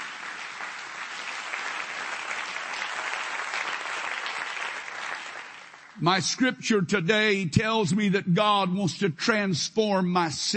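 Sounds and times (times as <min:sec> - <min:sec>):
audience clapping hands: 0:00.0 - 0:07.0
speech: 0:06.0 - 0:10.5.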